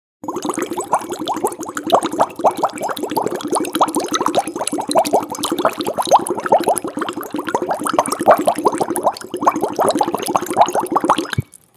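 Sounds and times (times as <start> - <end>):
bubbling: 0.2 - 11.7.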